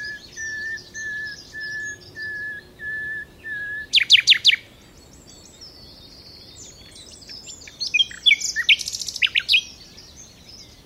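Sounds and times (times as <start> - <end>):
common nightingale Luscinia megarhynchos song with chirps and whistled notes: 0.0 - 10.8.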